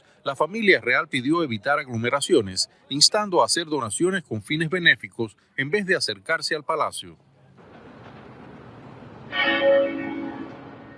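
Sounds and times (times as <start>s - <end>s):
speech: 0.2s - 7.3s, 9.6s - 10.1s
single bell of an abbey church tolling: 9.3s - 10.9s.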